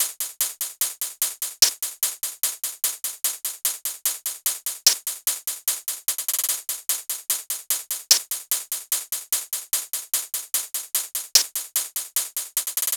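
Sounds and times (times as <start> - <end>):
hi-hat loop: 0.0 - 2.0, 3.0 - 12.9.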